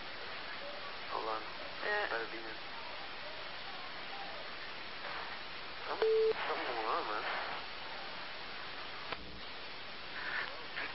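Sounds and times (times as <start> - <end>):
voices: 0.0 - 10.9
speech: 1.3 - 2.7, 5.9 - 7.5
electronic beep on a telephone line: 6.0 - 6.4.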